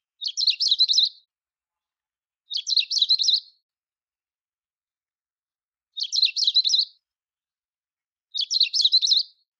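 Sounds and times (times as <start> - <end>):
benimashiko bird sound: 0.0 - 3.8, 5.8 - 7.2, 8.2 - 9.5.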